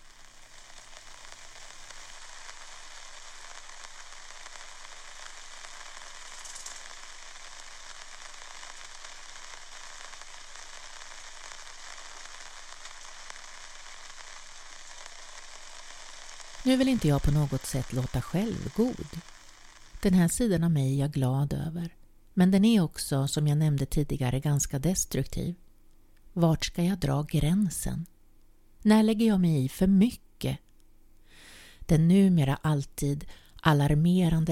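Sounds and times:
rain pattering on a large golf umbrella in a schoolyard: 0.0s - 20.2s
speech: 16.6s - 19.3s, 20.0s - 25.6s, 26.4s - 28.1s, 28.8s - 30.6s, 31.9s - 34.5s.

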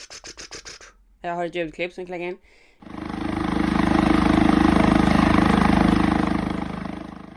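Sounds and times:
speech: 1.2s - 3.0s
helicopter rotor thumping while hovering at roof height outside a house: 2.8s - 7.3s.

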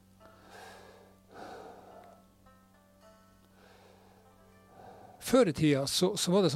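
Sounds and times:
person breathing slowly to refocus attention: 0.2s - 2.3s, 3.4s - 5.3s
speech: 5.3s - 6.5s.

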